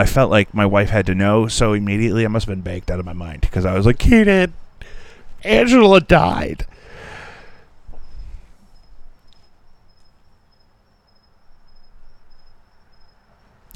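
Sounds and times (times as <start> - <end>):
speech: 0.0 - 4.6, 5.4 - 6.7
crickets chirping outdoors: 0.1 - 13.7
breathy rush: 6.6 - 8.7.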